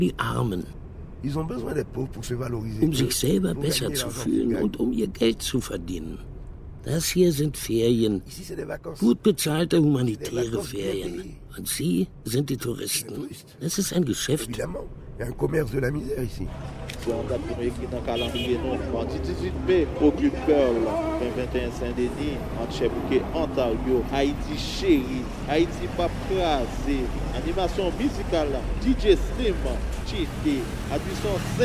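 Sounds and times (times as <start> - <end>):
car rolling slowly with low engine rumble: 0.0 - 13.2, 14.0 - 31.6
speech: 0.0 - 31.6.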